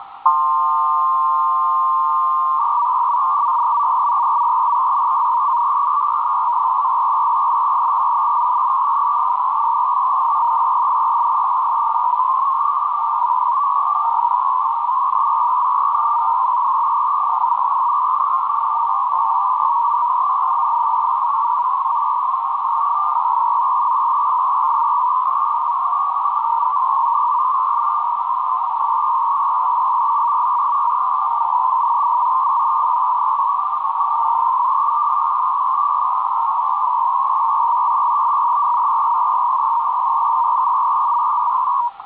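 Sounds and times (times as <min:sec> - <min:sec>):
Israeli military intelligence 300 baud radio data signal: 0:00.0 - 0:42.0.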